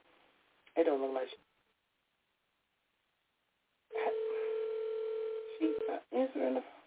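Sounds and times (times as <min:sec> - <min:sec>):
speech: 0:00.8 - 0:01.5
person speaking on the phone line: 0:03.9 - 0:04.8, 0:05.5 - 0:06.7
electronic ringback tone through a phone line on an outgoing call: 0:03.9 - 0:06.0.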